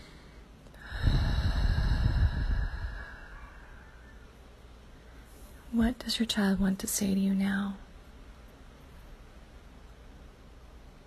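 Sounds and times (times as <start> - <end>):
long deep breath: 0.0 - 4.2
faint steady tonal hum: 0.0 - 11.0
speech: 5.8 - 7.8.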